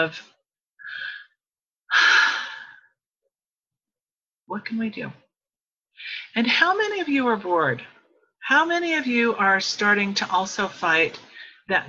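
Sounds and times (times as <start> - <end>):
speech: 0.0 - 0.3, 4.5 - 5.2, 6.0 - 11.8
group taking a collective breath: 0.8 - 2.9.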